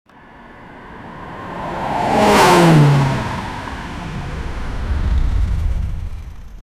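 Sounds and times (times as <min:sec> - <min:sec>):
car crash: 0:02.1 - 0:06.6.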